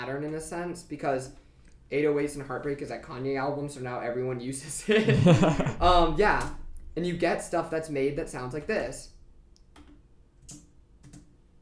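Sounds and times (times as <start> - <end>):
speech: 0.1 - 9.1
laughter: 4.8 - 5.9
computer keyboard clicking: 9.6 - 11.4.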